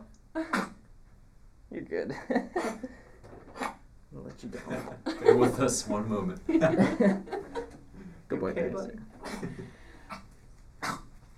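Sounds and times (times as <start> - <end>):
speech: 0.4 - 0.6, 1.8 - 2.9, 4.4 - 7.4, 8.5 - 9.7
dog coughing in harsh bursts: 0.4 - 0.8, 9.2 - 10.2, 10.8 - 11.1
laughter: 4.5 - 8.1.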